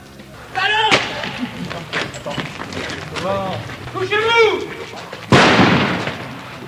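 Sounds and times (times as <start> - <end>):
laughter: 0.4 - 5.3
speech: 3.2 - 4.8
simulated grenade explosive blast: 5.3 - 6.5.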